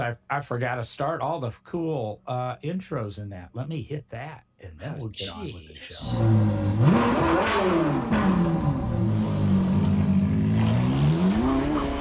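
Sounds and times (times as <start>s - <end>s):
speech: 0.1s - 9.1s
car engine revving: 5.8s - 12.0s.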